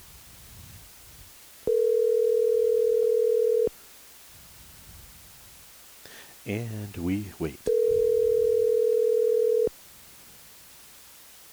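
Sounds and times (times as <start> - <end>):
steady electronic ringback tone of a phone call being placed: 1.7 - 3.8, 7.7 - 9.8
speech: 6.4 - 7.8.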